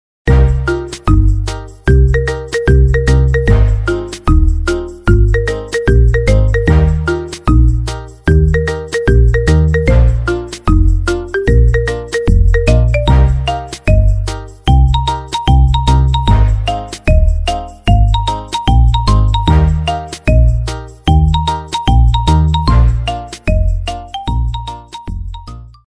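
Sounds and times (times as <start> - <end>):
marimba cover ringtone: 0.3 - 25.8.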